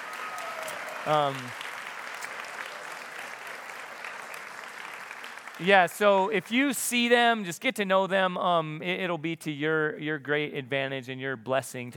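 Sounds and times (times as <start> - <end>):
congregation applause during a church service: 0.0 - 6.7
speech: 1.0 - 1.6, 5.6 - 11.9.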